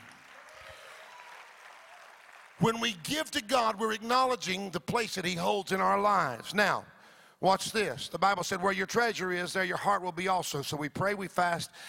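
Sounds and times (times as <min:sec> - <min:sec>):
large audience applause: 0:00.0 - 0:02.7
speech: 0:02.6 - 0:11.8.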